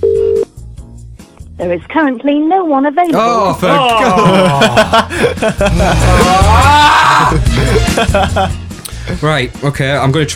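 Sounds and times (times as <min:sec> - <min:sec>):
electronic telephone tone: 0:00.0 - 0:00.5
speech: 0:01.6 - 0:10.3
laughter: 0:03.4 - 0:08.6.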